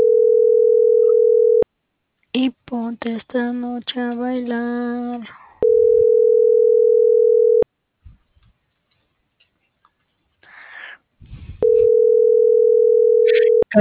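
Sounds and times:
telephone tone on an unanswered transport line: 0.0s - 1.6s, 5.6s - 7.6s, 11.6s - 13.7s
speech: 2.4s - 5.4s.

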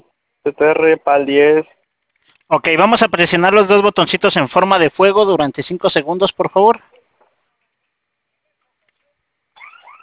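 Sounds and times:
speech: 0.4s - 1.8s, 2.5s - 7.0s
security alarm blaring with warbling electronic tones: 9.6s - 10.0s.

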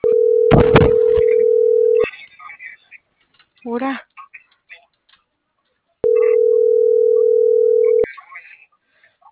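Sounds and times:
telephone dial tone from a phone being dialed: 0.0s - 2.0s, 6.0s - 8.0s
speech: 3.6s - 4.1s.

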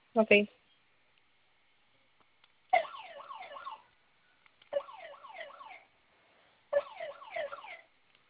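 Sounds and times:
speech: 0.2s - 0.6s
home security electronic alarm siren warbling: 2.8s - 3.9s, 4.7s - 5.9s, 6.8s - 7.9s.

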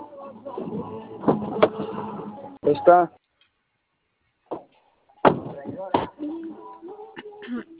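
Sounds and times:
car door opening and shutting: 0.6s - 2.1s
speech: 2.7s - 3.2s.

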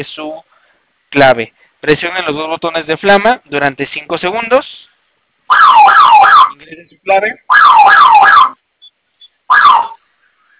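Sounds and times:
speech: 0.0s - 0.5s, 1.1s - 4.8s, 6.6s - 8.3s
electronic security alarm siren wailing: 5.5s - 6.6s, 7.5s - 8.6s, 9.5s - 10.0s.

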